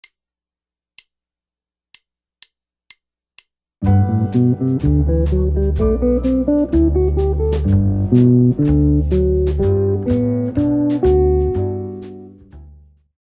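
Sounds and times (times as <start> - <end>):
guitar playing maj7 arpeggios: 3.9 - 12.4.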